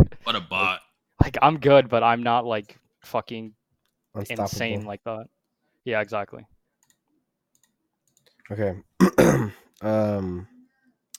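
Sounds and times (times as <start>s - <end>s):
speech: 0.0s - 3.6s, 4.2s - 6.5s, 8.5s - 10.5s
person coughing: 9.0s - 9.7s
drawn-out voiced throat sound: 9.0s - 10.4s.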